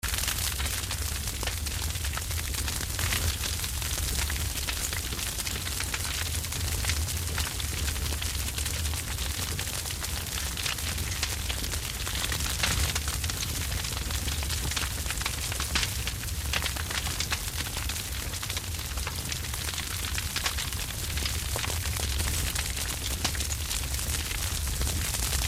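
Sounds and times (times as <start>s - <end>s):
fire with fast crackles: 0.0s - 25.4s.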